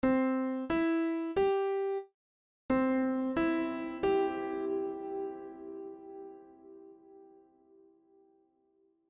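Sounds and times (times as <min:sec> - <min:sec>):
piano playing with and without reverb: 0:00.0 - 0:02.0, 0:02.7 - 0:07.9.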